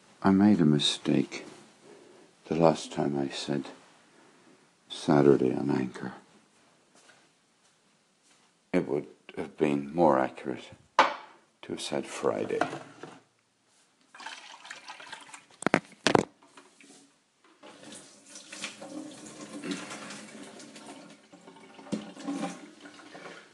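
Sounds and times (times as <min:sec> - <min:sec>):
speech: 0:00.2 - 0:01.5, 0:02.5 - 0:03.8, 0:04.9 - 0:06.2, 0:08.7 - 0:10.8, 0:11.7 - 0:12.9
old over-boiled water poured out of a kettle into a sink: 0:14.1 - 0:15.6, 0:17.6 - 0:23.5.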